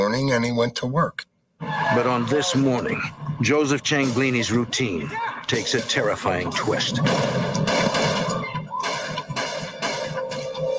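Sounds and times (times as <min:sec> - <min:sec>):
speech: 0:00.0 - 0:07.5
gunshots as four men open fire: 0:05.6 - 0:10.7.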